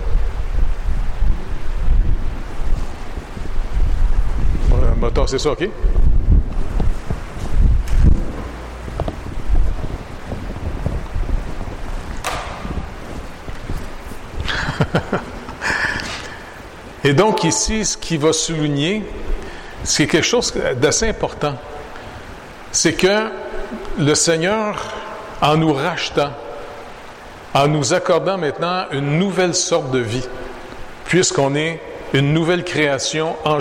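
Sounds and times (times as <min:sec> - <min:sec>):
wind buffeting the microphone: 0:00.0 - 0:22.7
speech: 0:05.2 - 0:06.0, 0:17.1 - 0:21.8, 0:22.8 - 0:26.4, 0:27.6 - 0:30.4, 0:31.1 - 0:33.5
laughter: 0:14.4 - 0:16.3.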